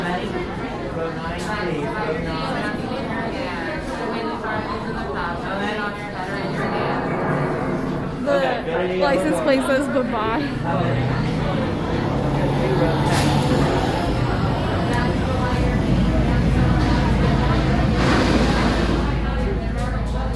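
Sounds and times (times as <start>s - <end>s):
indistinct voices murmuring: 0.0s - 20.3s
speech: 8.9s - 11.3s
ride car rumbling with clattering texture: 10.0s - 20.3s.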